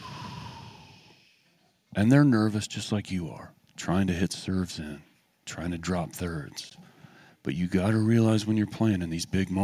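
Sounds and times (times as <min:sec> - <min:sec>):
soft airy exhale through the mouth: 0:00.0 - 0:01.6
speech: 0:02.0 - 0:09.6.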